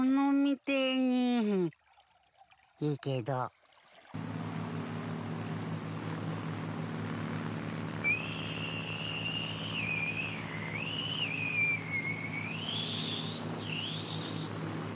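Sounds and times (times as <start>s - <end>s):
speech: 0.2s - 1.8s, 2.8s - 4.3s
constant low rumble of an engine droning: 4.2s - 14.9s
person whistling a wavering tune: 8.1s - 14.3s.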